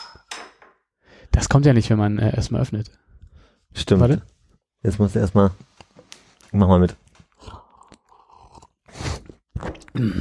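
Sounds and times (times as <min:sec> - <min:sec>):
speech: 0:01.4 - 0:03.1, 0:03.8 - 0:05.8, 0:06.5 - 0:07.6, 0:10.0 - 0:10.1
wet chewing and crunching of food in the mouth: 0:07.3 - 0:10.0.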